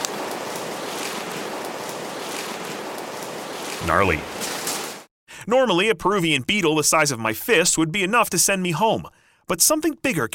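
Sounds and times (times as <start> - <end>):
steady dense rushing of water: 0.0 - 5.1
wind-like hiss: 0.0 - 5.1
speech: 3.8 - 4.4, 5.5 - 10.3.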